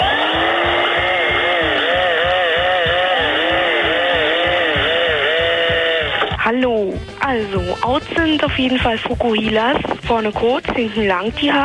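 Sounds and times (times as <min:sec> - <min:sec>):
electric drill motor whining as a comic instrument: 0:00.0 - 0:06.4
steady rhythmic low pulsing: 0:00.0 - 0:11.6
speech: 0:07.9 - 0:11.6.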